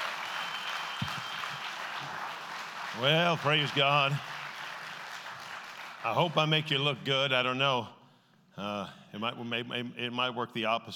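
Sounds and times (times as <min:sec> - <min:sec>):
applause from a church congregation: 0:00.0 - 0:06.6
speech: 0:03.0 - 0:04.3, 0:06.0 - 0:08.0, 0:08.6 - 0:10.9.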